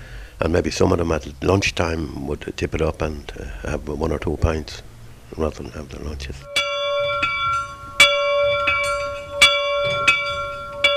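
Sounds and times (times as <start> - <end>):
speech: 0.4 - 6.6
large old distillery factory bell ringing: 6.4 - 10.9.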